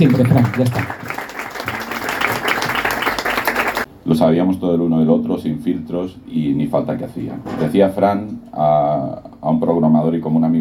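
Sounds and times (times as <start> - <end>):
speech: 0.0 - 1.0, 4.0 - 10.5
crowd applauding at a tribute during the Gijón film festival: 0.0 - 3.9.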